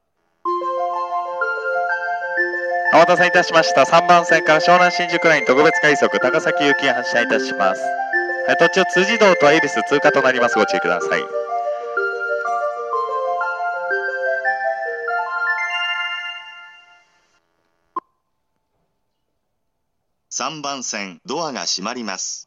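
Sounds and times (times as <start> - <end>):
train departure melody on a downbound station platform: 0.5 - 17.4
station staff announcement: 1.9 - 15.7.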